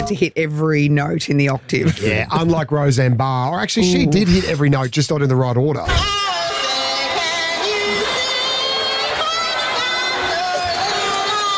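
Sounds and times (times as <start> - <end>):
speech: 0.0 - 6.4
large crowd booing a female singer: 5.9 - 11.5.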